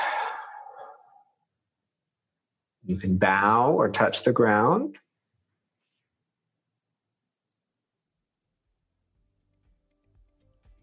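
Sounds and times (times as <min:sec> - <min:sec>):
deep exhaled breath during a group breathing practice: 0:00.0 - 0:01.2
speech: 0:02.8 - 0:05.0.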